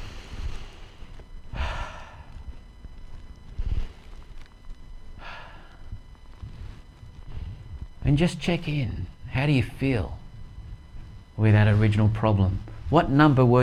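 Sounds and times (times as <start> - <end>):
slow deep breaths during a guided EFT tapping exercise: 0.0 - 8.0
low hum: 0.0 - 13.6
speech: 8.1 - 10.2, 11.4 - 13.6.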